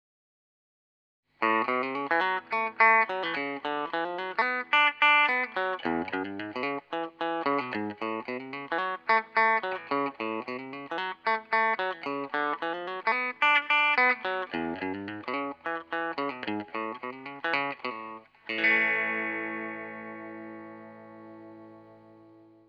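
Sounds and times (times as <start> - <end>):
thin clean electric guitar on bridge pickup: 1.4 - 22.6.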